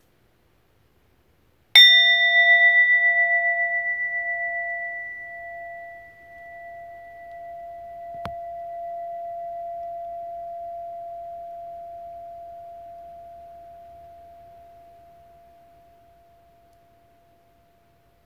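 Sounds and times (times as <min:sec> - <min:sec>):
meditation chime ringing: 0:01.8 - 0:15.8.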